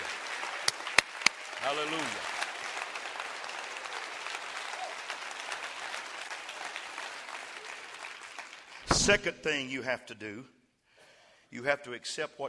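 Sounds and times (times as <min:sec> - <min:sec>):
large group applauding: 0:00.0 - 0:09.3
speech: 0:01.6 - 0:02.4, 0:09.0 - 0:10.6, 0:11.5 - 0:12.4.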